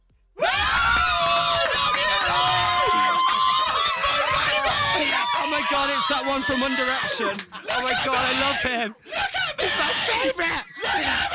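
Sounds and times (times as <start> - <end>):
crowd screaming and cheering with high-pitched voices: 0.4 - 8.7
laughter: 2.4 - 11.3
speech: 6.1 - 11.3.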